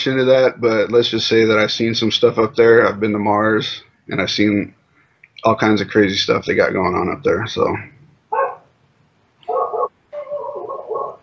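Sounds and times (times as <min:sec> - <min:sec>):
speech: 0:00.0 - 0:04.8, 0:05.4 - 0:07.9
neighbor's dog barking: 0:08.3 - 0:08.7, 0:09.4 - 0:11.2.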